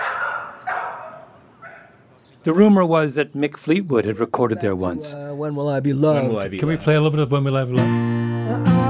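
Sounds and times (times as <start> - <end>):
pit bull barking in whiny bursts: 0.0 - 2.0
speech: 2.4 - 8.7.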